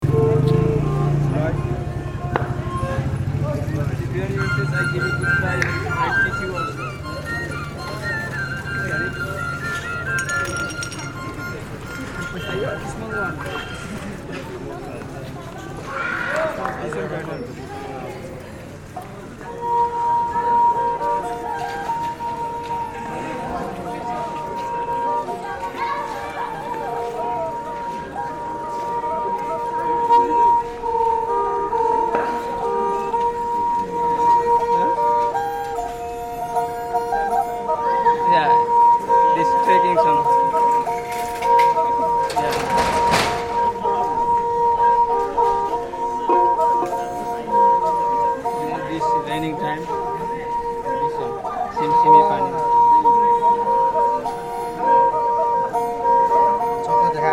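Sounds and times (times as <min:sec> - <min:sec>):
sarangi playing in Nepal: 0:00.0 - 0:57.3.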